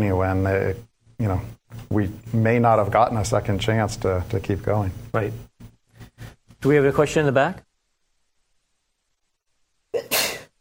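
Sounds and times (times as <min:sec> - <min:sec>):
speech: 0:00.0 - 0:05.5, 0:06.2 - 0:07.7
person sneezing in an audience: 0:10.0 - 0:10.5.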